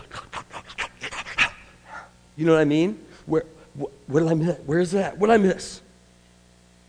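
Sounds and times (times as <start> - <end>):
person imitating a dog sniffing and panting: 0.0 - 2.2
speech: 2.4 - 5.8.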